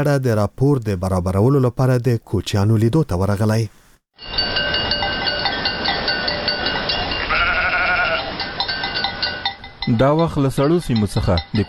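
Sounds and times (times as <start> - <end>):
speech: 0.0 - 4.4, 9.9 - 11.6
clanking bells on sheep and goats: 4.2 - 11.6
flock of sheep and goats bleating, driven by migrating nomads: 7.2 - 8.4.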